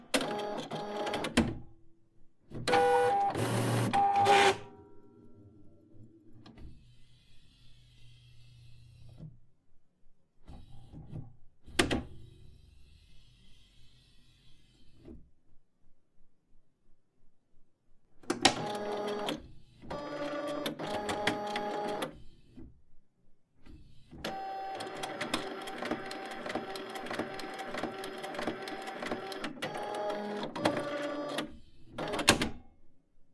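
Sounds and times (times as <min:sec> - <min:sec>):
Canon S6300 inkjet printer switching on and off: 0:00.2 - 0:01.3, 0:02.7 - 0:04.7, 0:18.5 - 0:22.1, 0:24.2 - 0:32.4.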